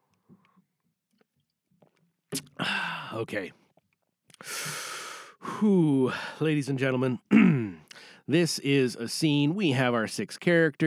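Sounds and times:
sipping and swallowing water: 2.3s - 3.0s
speech: 2.6s - 3.6s, 5.6s - 7.5s, 8.3s - 10.8s.

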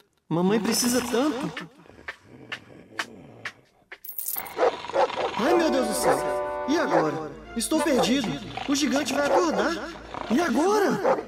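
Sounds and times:
speech: 0.3s - 1.8s, 5.4s - 11.2s
coins dropping one by one: 4.0s - 4.5s
coins jingling and clattering: 4.0s - 4.6s.

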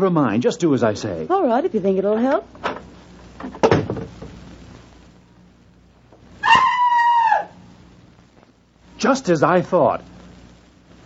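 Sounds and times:
speech: 0.0s - 2.8s, 9.0s - 10.2s
bathroom door shutting with a sharp thud: 3.6s - 4.4s
muffled scream from inside the bathroom: 6.4s - 7.6s.

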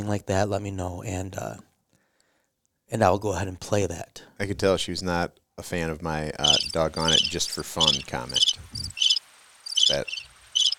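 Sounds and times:
speech: 0.0s - 1.7s, 2.9s - 9.1s, 9.9s - 10.2s
cricket chirping: 6.4s - 10.7s.

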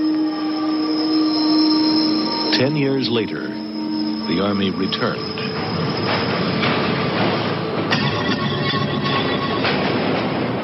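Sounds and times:
New York City subway train rolling along rails: 0.0s - 10.6s
speech: 2.6s - 3.6s, 4.3s - 5.7s
sharp clank: 5.6s - 10.6s.

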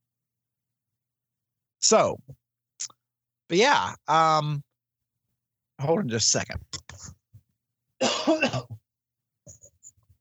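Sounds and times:
speech: 1.8s - 4.7s, 5.8s - 7.2s, 8.0s - 8.8s
loud harsh cough: 8.0s - 8.8s
soft throat clearing: 8.0s - 8.8s.

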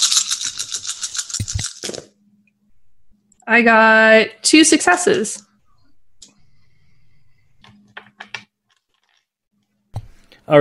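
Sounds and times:
dice rattling in a hand: 0.0s - 2.1s
speech: 3.5s - 5.5s.

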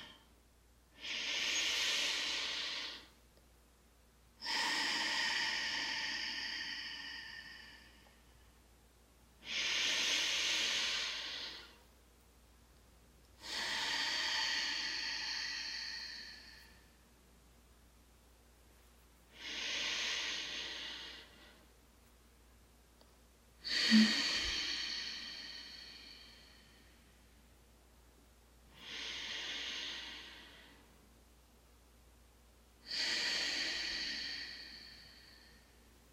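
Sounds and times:
slow airy breathing during meditation: 0.0s - 3.2s, 4.4s - 8.6s, 9.4s - 11.9s, 13.4s - 17.1s, 19.3s - 21.8s, 23.6s - 27.5s, 28.7s - 31.1s, 32.8s - 36.1s.

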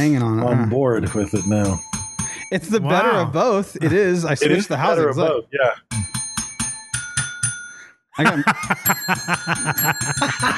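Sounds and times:
speech: 0.0s - 1.9s, 2.5s - 6.1s, 8.2s - 10.5s
people laughing: 0.2s - 1.4s, 2.5s - 5.4s, 8.2s - 10.5s
small bell dinging: 1.1s - 2.6s, 6.0s - 7.9s, 8.6s - 10.5s.

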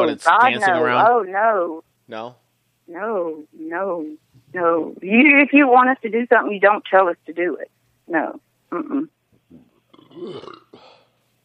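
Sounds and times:
speech: 0.1s - 10.9s
scattered vocal sounds and murmurs: 8.7s - 11.0s
loud low gurgling belch: 8.8s - 11.0s.

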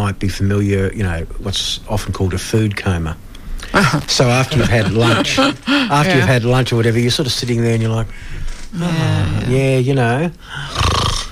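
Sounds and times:
speech: 0.1s - 10.8s
laughter: 3.8s - 6.4s
voice imitating snoring: 10.6s - 11.3s.

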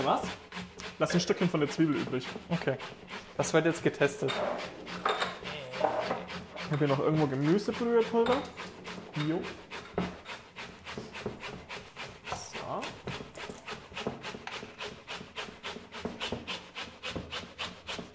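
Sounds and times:
speech: 0.0s - 0.4s, 1.0s - 5.1s, 5.8s - 9.6s
vegetables grated on a kitchen grater: 0.0s - 18.1s.

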